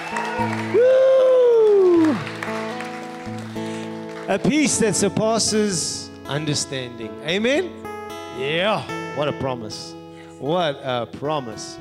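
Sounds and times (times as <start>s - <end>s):
long loud falling shout: 0.0s - 2.3s
crowd clapping and cheering: 0.0s - 5.2s
speech: 0.4s - 1.0s, 4.3s - 7.8s, 8.4s - 11.7s.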